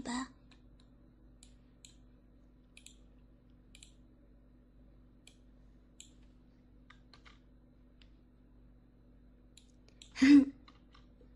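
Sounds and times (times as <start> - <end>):
quiet hum: 0.0 - 11.3
light computer mouse clicks: 0.5 - 2.0, 2.7 - 3.1, 3.7 - 4.0, 5.2 - 5.4, 6.0 - 7.4, 9.5 - 11.1.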